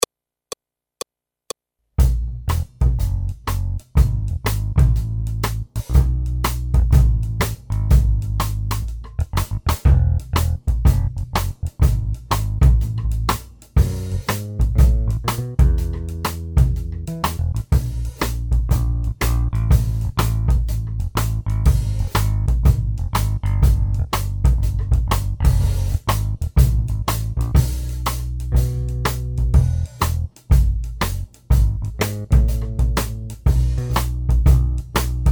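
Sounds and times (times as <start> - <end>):
classical swing accompaniment only: 2.0 - 35.2.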